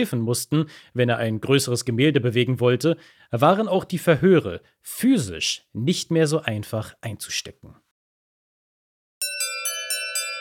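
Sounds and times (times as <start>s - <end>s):
speech: 0.0s - 7.8s
electronic bell ringing: 9.2s - 10.3s.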